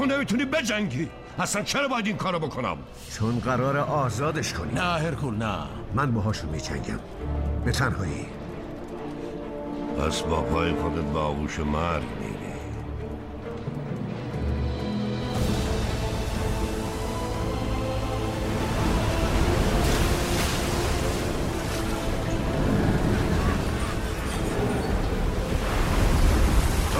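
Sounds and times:
speech: 0.0 - 8.4, 10.0 - 12.3
ocean waves washing and surging on open water: 12.8 - 26.9.

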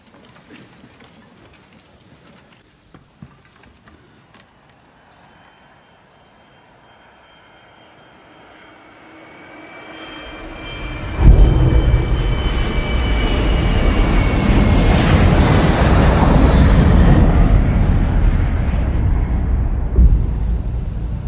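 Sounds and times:
US Airways airliner jet engines roaring in flight: 5.0 - 21.2
brief thump: 19.9 - 21.2.

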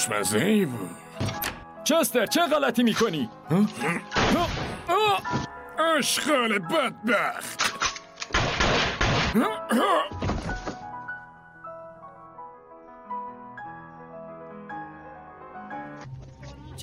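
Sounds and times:
speech: 0.0 - 7.7, 9.3 - 10.2
gunshots from upstairs room: 8.3 - 9.4.

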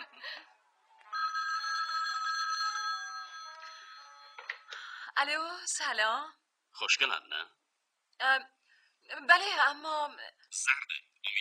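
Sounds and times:
telephone ringing with an electronic trill: 1.0 - 4.7
speech: 5.2 - 7.6, 8.2 - 11.3.

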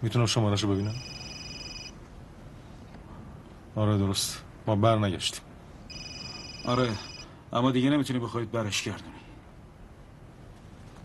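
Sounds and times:
speech: 0.0 - 1.2, 3.8 - 5.5, 6.6 - 9.2
short electronic mobile phone ring: 0.9 - 2.0, 5.9 - 7.3.

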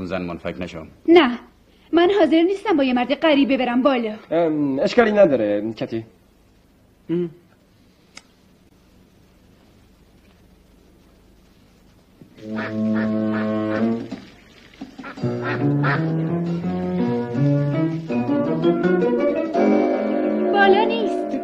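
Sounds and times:
speech: 0.0 - 6.2, 7.1 - 7.4, 12.4 - 14.2, 15.0 - 17.0, 17.9 - 20.0, 20.6 - 21.2
duck quacking: 12.4 - 14.2, 15.0 - 16.7.

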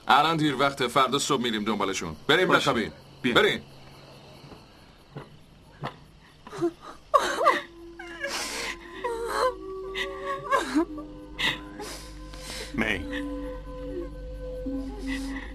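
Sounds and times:
speech: 0.1 - 3.7
person crying and sobbing: 6.5 - 15.5.

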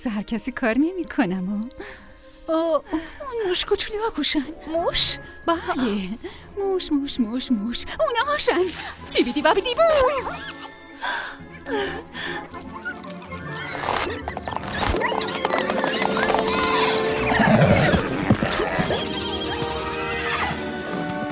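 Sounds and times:
speech: 0.0 - 12.7
white ceremonial horses whinnying and neighing: 10.3 - 21.2.

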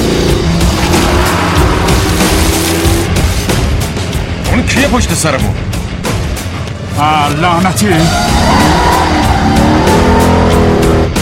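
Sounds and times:
car tires skidding and squealing during a chase: 0.0 - 3.2, 7.8 - 11.2
car engine roaring under heavy acceleration during a chase: 0.0 - 4.6, 5.6 - 11.2
speech: 4.8 - 5.8, 7.0 - 8.9.

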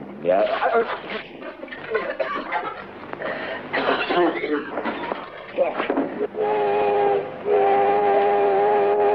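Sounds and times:
laughter: 0.3 - 6.3
train rumbling as it arrives in a city: 5.9 - 9.1
train whistle blasts as a train arrives in a city: 6.3 - 9.1.

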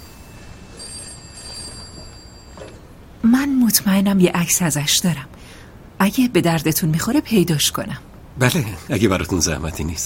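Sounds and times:
telephone with high electronic trilling ring: 0.0 - 3.7
speech: 3.2 - 10.0.

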